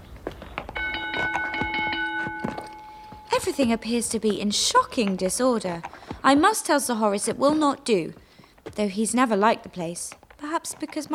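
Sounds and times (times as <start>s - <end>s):
thumps and shuffling knocks: 0.0s - 11.1s
doorbell ringing with a sustained metallic tone: 0.8s - 3.7s
speech: 3.4s - 8.2s, 8.8s - 11.1s.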